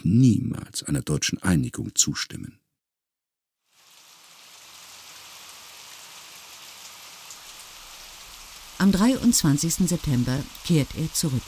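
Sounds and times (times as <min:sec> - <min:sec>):
speech: 0:00.0 - 0:02.6, 0:08.8 - 0:11.4
rain drumming on city streets: 0:03.6 - 0:11.4.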